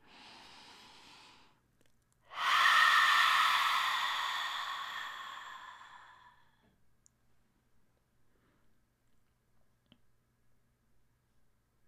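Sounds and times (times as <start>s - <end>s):
deep exhale through the open mouth during a guided meditation: 0.0s - 1.6s, 2.3s - 6.6s.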